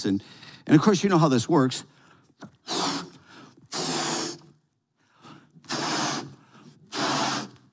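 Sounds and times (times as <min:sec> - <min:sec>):
speech: 0:00.0 - 0:02.5
balloon being blown up with forceful breaths: 0:02.6 - 0:04.5, 0:05.7 - 0:07.7.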